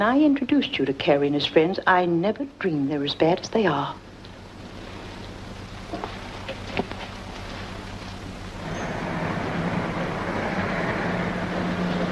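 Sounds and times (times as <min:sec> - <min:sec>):
speech: 0:00.0 - 0:04.0
police car engine rumble and tyre noise passing slowly outside house: 0:08.5 - 0:12.0.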